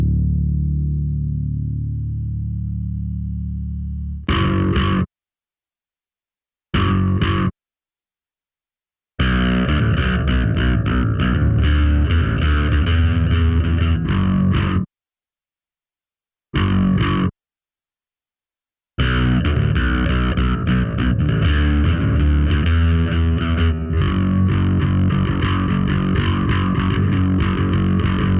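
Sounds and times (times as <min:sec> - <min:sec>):
solo distorted bass guitar riff: 0:00.0 - 0:05.1, 0:06.8 - 0:07.6, 0:09.2 - 0:14.9, 0:16.6 - 0:17.4, 0:19.0 - 0:28.3.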